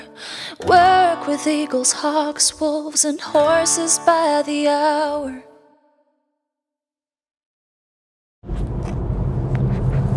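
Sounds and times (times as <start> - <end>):
speech: 0.6 - 5.5
low rumble and road noise inside a moving car: 8.5 - 10.1.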